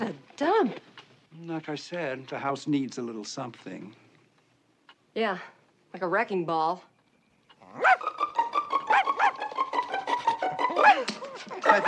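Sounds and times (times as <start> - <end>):
speech: 0.4 - 4.0, 5.2 - 6.9
small dog yapping: 7.6 - 9.4, 10.7 - 11.8.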